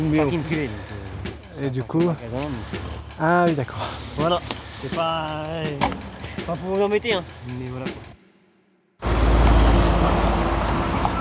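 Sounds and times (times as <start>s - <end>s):
speech: 0.0s - 0.9s, 1.6s - 8.1s
truck overtaking on a big boulevard: 9.0s - 11.1s.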